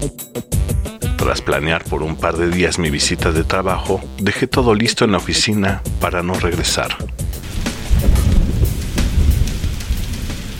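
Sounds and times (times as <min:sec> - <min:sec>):
speech: 0:00.0 - 0:00.6, 0:01.2 - 0:07.2
heavy rain at a school: 0:07.4 - 0:10.5
splashes and drips: 0:07.4 - 0:10.5.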